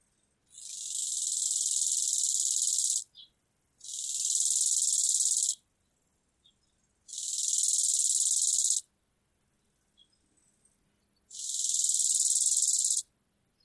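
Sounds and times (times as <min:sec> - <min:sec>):
Chorthippus biguttulus grasshopper chirping: 0:00.6 - 0:03.0, 0:03.8 - 0:05.6, 0:07.1 - 0:08.8, 0:11.3 - 0:13.0.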